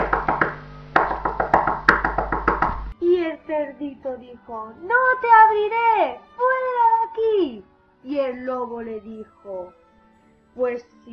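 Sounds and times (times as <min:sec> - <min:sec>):
knocking on the door of a straw house: 0:00.0 - 0:02.9
speech: 0:03.6 - 0:06.4, 0:07.2 - 0:09.8, 0:10.6 - 0:11.1.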